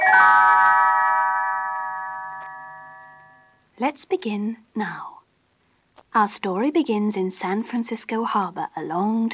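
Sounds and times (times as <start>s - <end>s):
little chiming bells: 0.0s - 3.6s
speech: 3.8s - 5.2s, 6.1s - 9.3s.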